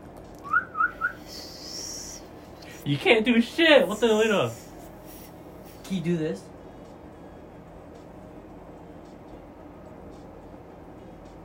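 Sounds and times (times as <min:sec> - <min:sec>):
person whistling short rising-and-falling notes: 0:00.4 - 0:02.2
faint airy hiss: 0:01.2 - 0:02.9, 0:03.7 - 0:06.8
speech: 0:02.8 - 0:04.6, 0:05.9 - 0:06.5.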